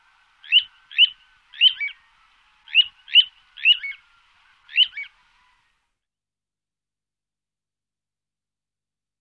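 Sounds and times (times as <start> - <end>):
Little ringed plover Charadrius dubius calls: 0.4 - 2.0, 2.7 - 4.0, 4.7 - 5.1.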